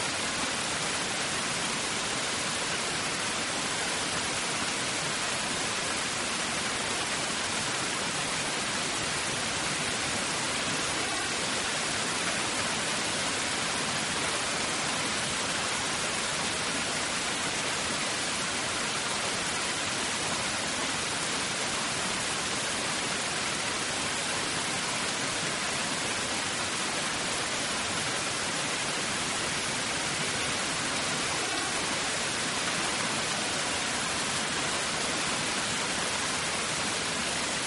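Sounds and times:
rain and wind hiss: 0:00.0 - 0:37.6.

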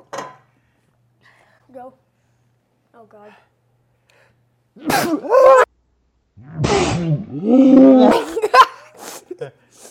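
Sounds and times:
speech: 0:01.7 - 0:02.1, 0:02.9 - 0:03.6, 0:04.8 - 0:05.6, 0:06.4 - 0:08.6, 0:09.4 - 0:09.6
loud sneeze after eating a spicy chip: 0:04.8 - 0:05.7, 0:06.6 - 0:07.2, 0:07.9 - 0:09.4.

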